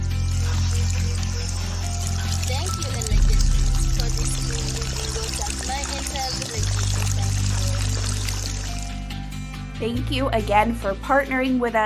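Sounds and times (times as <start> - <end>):
water pouring in a continuous rushing flow: 0.2 - 9.2
speech: 9.9 - 11.8.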